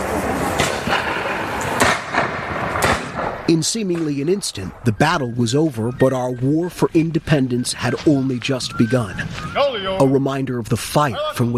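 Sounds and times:
constant wash of noise: 0.0 - 11.5
musket fire in a reenactment of the opening battle of the American Revolution: 0.5 - 4.2
speech: 3.5 - 11.5.

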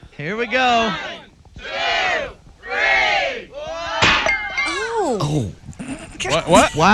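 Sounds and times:
speech: 0.2 - 1.7, 5.1 - 5.6, 6.2 - 6.9
large crowd shouting a countdown in unison: 0.5 - 4.7.

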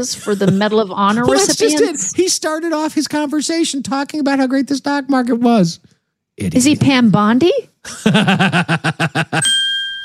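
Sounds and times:
speech: 0.0 - 9.7
laughter: 7.8 - 9.5
bell sound effect ding: 9.4 - 10.0.

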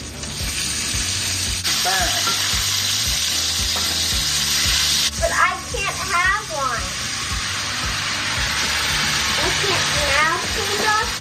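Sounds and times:
olive oil sizzling on cooked chicken in a hot pan: 0.0 - 11.1.

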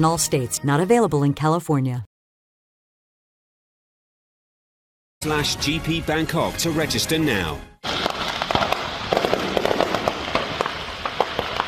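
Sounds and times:
speech: 0.0 - 2.1, 5.2 - 8.1
fireworks at a burning stand in Broken Arrow near Tulsa Oklahoma detonating: 7.8 - 11.6
steady crackling hiss: 7.8 - 11.6.

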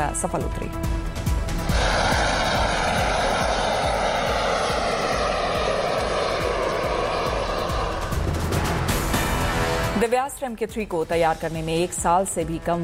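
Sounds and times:
speech: 0.0 - 1.7, 10.0 - 12.8
jet engine of an unmanned aircraft roaring in flight: 1.1 - 10.1.

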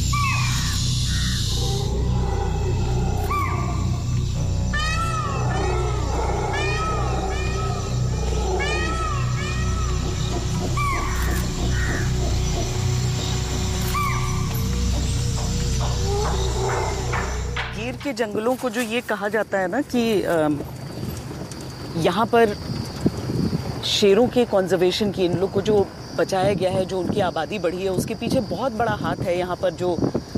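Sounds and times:
peacock giving its danger call in a forest: 0.1 - 17.9
speech: 18.1 - 20.8, 22.0 - 22.8, 23.8 - 30.1.

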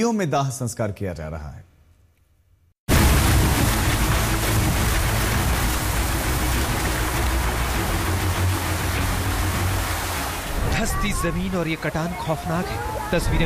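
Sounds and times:
speech: 0.0 - 1.7, 10.8 - 13.4
rushing floodwater of a swollen river: 2.9 - 13.4.

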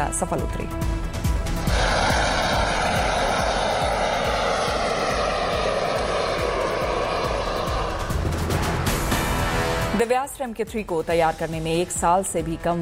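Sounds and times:
speech: 0.0 - 1.1, 10.0 - 12.8
jet-powered unmanned aircraft engine roaring past in flight: 1.1 - 10.0.

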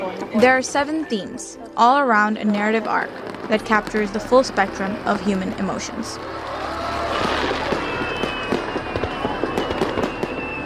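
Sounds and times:
speech: 0.2 - 6.4
fireworks crackling with sharp pops and bangs: 2.8 - 5.6, 6.2 - 10.6
dense continuous hiss of firework explosions: 7.1 - 10.6.

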